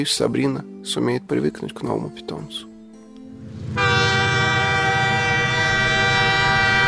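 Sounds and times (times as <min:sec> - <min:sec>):
speech: 0:00.0 - 0:02.7
low rumble of a passenger train at a railway station: 0:03.3 - 0:06.8.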